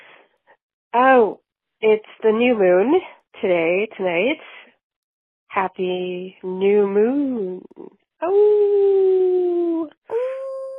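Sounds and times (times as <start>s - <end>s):
speech: 0.9s - 4.6s, 5.5s - 8.9s
person imitating a wolf howl: 9.5s - 10.7s.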